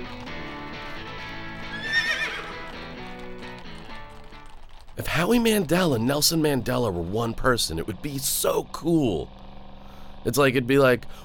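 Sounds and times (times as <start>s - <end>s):
horse neighing with a long shrill whinny: 1.4s - 3.8s
speech: 5.0s - 9.4s, 10.2s - 11.2s.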